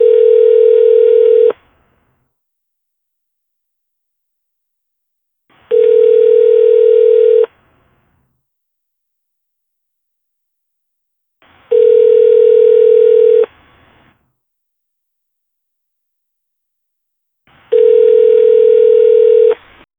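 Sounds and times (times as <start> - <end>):
phone ringing for a phone call: 0.0 - 1.6, 5.7 - 7.5, 11.7 - 13.5, 17.7 - 19.7.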